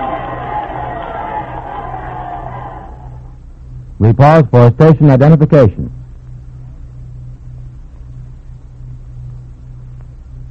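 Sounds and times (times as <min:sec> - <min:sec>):
large crowd cheering and shouting: 0:00.0 - 0:03.3
speech: 0:04.0 - 0:06.0.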